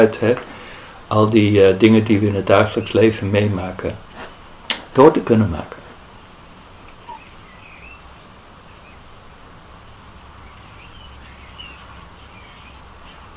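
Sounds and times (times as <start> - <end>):
speech: 0.0 - 0.5, 1.1 - 4.0, 5.0 - 5.8
outdoor hiss: 0.0 - 13.3
blackbird singing: 6.9 - 9.2, 9.8 - 13.3.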